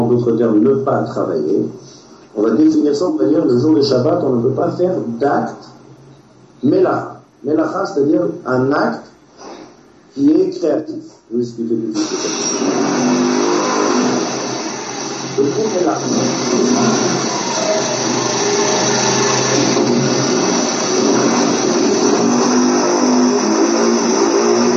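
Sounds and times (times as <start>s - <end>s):
speech: 0.1s - 5.8s, 6.6s - 9.1s, 10.2s - 13.4s, 15.4s - 18.9s
motorcycle passing outside: 12.1s - 24.7s.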